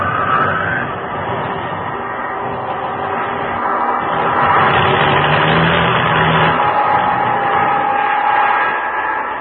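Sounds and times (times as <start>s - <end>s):
laboring aircraft engine with engine trouble sputtering over the open ocean: 0.0s - 9.3s.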